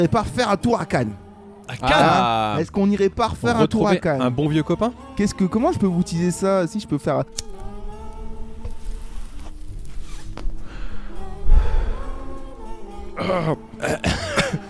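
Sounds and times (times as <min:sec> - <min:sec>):
speech: 0:00.0 - 0:07.5, 0:13.2 - 0:14.3
quiet breathing: 0:10.5 - 0:12.8
person coughing and clearing throat after smoking: 0:13.2 - 0:14.6.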